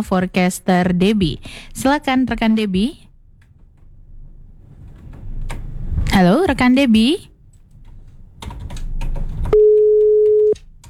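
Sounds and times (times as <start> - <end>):
speech: 0.0 - 3.0, 6.2 - 7.3
telephone busy signal after call cut off: 9.5 - 10.6.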